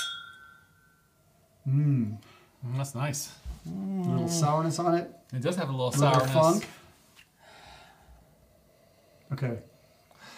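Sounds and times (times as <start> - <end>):
drinking glasses clinking in a toast: 0.0 - 1.0
speech: 1.7 - 6.8, 9.3 - 9.7.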